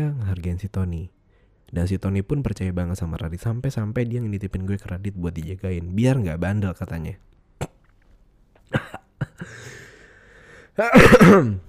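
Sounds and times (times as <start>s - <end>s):
speech: 0.0s - 7.7s, 10.8s - 11.6s
person coughing: 8.7s - 9.8s, 10.8s - 11.6s.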